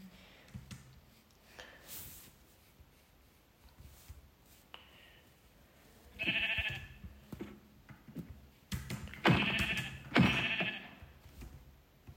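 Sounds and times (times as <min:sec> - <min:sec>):
quiet clicks and shuffling: 0:00.0 - 0:10.2, 0:10.9 - 0:12.1
several sheep bleating: 0:06.2 - 0:07.0, 0:09.3 - 0:11.0.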